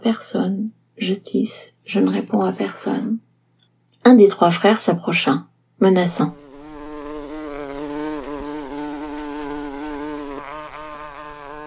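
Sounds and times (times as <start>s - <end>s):
speech: 0.0s - 3.3s, 4.0s - 6.4s
mosquito buzzing with a thin whine: 6.2s - 11.6s.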